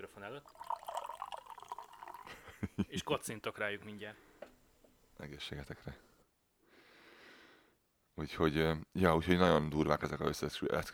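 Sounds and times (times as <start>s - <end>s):
champagne poured into a glass in front of a microphone: 0.0s - 2.6s
speech: 0.1s - 0.8s, 2.3s - 4.3s, 5.2s - 6.1s, 8.2s - 10.9s.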